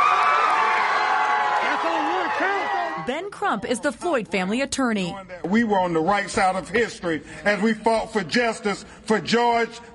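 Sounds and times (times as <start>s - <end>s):
individual whoops and yells from the crowd: 0.0s - 3.1s
large crowd cheering and shouting outside a courthouse: 0.0s - 3.2s
speech: 3.1s - 9.9s.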